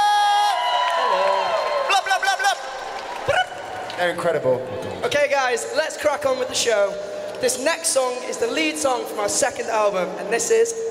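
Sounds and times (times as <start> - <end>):
large concert crowd cheering and screaming: 0.0 - 3.9
speech: 4.0 - 10.8.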